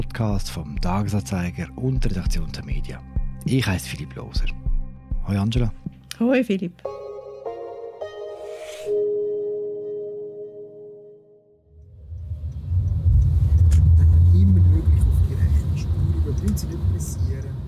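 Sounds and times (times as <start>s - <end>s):
speech: 0.2s - 4.7s, 5.3s - 6.9s
tonal music: 1.7s - 12.3s
car engine rumbling heard from inside the cabin while driving: 11.9s - 17.6s
faint road noise: 12.0s - 17.6s.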